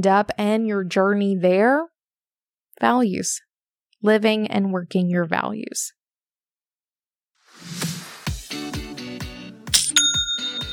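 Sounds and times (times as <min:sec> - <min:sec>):
speech: 0:00.0 - 0:01.9, 0:02.8 - 0:06.0
e-commerce sale notification chime: 0:09.9 - 0:10.7.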